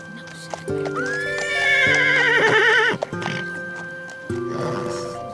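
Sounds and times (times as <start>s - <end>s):
horse hooves clip-clopping: 0.0s - 5.1s
horse neighing: 1.0s - 3.6s.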